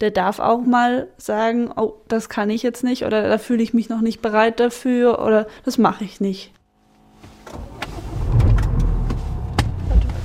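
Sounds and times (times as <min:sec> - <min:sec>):
speech: 0:00.0 - 0:06.6
car engine and tyres rumbling on a morning drive near Baden-Baden: 0:06.9 - 0:10.2.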